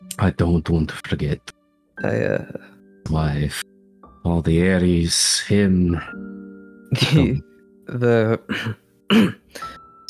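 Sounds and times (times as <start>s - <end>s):
speech: 0.2s - 3.6s, 4.2s - 9.7s
person clearing their throat: 6.9s - 7.4s, 8.0s - 9.8s
person coughing: 6.9s - 7.4s, 8.0s - 9.8s.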